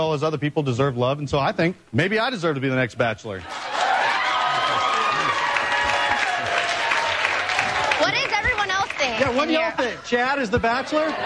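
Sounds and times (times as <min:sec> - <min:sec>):
speech: 0:00.0 - 0:03.8, 0:09.2 - 0:11.2
crowd cheering and applauding: 0:03.4 - 0:10.0.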